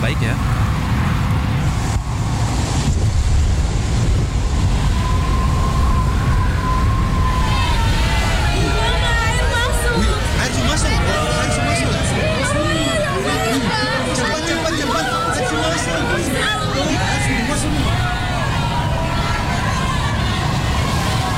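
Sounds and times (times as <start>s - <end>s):
gusting wind in a storm at sea aboard a ship: 0.0s - 21.3s
low rumbling undertone: 0.0s - 21.3s
sudden heavy rain in a storm at sea aboard a ship: 0.0s - 21.3s
faint indistinct voices: 6.7s - 21.3s.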